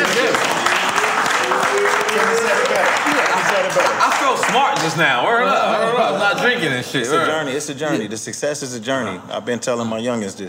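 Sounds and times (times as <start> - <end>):
several people clapping: 0.0 - 5.4
speech: 4.5 - 10.4.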